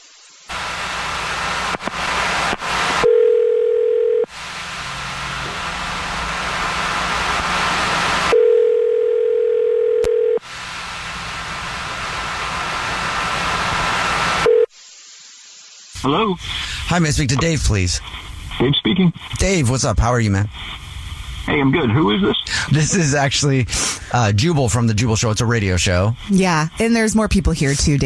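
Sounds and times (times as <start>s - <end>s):
loud hissing noise: 0.0s - 3.1s, 4.3s - 8.4s, 10.4s - 28.0s
ringback tone on an outgoing phone call: 3.0s - 4.3s, 8.3s - 10.4s, 14.5s - 14.7s
speech: 16.0s - 20.8s, 21.5s - 28.0s.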